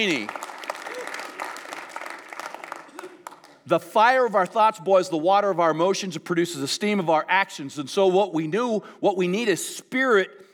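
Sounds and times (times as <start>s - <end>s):
speech: 0.0s - 0.4s, 3.7s - 10.5s
audience applause at a church sermon: 0.0s - 4.0s.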